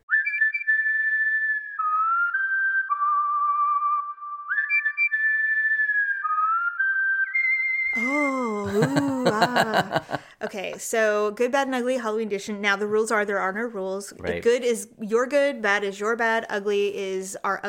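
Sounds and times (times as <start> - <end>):
bright sustained whistled melody: 0.0 - 8.4
laughter: 8.0 - 10.3
speech: 8.8 - 17.6.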